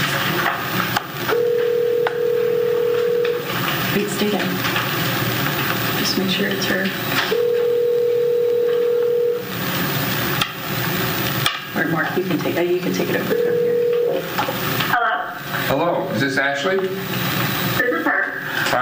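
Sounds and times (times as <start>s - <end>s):
noisy hum: 0.0s - 18.7s
long steady electronic telephone tones from a call being placed: 1.3s - 4.0s, 5.8s - 10.4s, 12.9s - 14.7s
speech: 12.3s - 13.6s, 15.7s - 17.4s.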